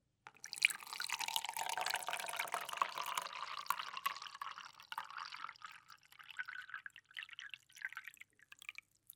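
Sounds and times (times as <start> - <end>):
water pouring into a glass: 0.3 - 9.1.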